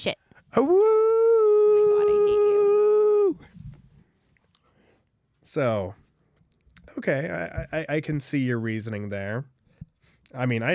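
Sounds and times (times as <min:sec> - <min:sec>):
speech: 0:00.0 - 0:01.2, 0:05.5 - 0:06.0, 0:07.0 - 0:09.6, 0:10.3 - 0:10.7
person imitating a husky howl: 0:00.6 - 0:03.4.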